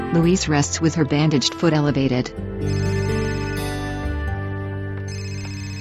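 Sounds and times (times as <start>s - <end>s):
speech: 0.1s - 2.9s
phone ringing with a melodic electronic ringtone: 2.6s - 3.9s, 5.0s - 5.7s.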